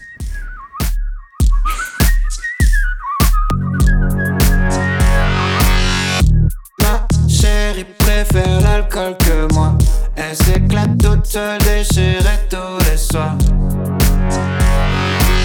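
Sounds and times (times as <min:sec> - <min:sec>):
pitch-corrected human whistle carrying a wavering melody: 0:00.0 - 0:07.7
pounding beat with regular kick drums: 0:00.0 - 0:15.4
fuller synth-heavy section: 0:03.6 - 0:15.4.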